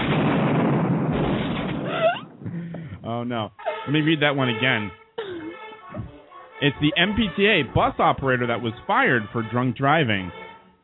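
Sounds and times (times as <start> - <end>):
explosion: 0.0 - 3.0
speech: 3.2 - 5.0, 6.6 - 10.4.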